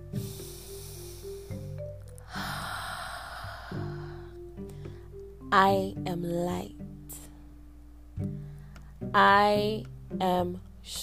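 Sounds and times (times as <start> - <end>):
deep breath inhale during a guided affirmation exercise: 0.0 - 5.2
soft sustained music: 0.0 - 11.0
speech: 5.5 - 6.8, 9.2 - 11.0.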